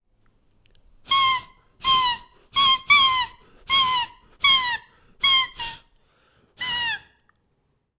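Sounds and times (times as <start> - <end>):
jay giving harsh nasal calls: 1.1 - 5.9.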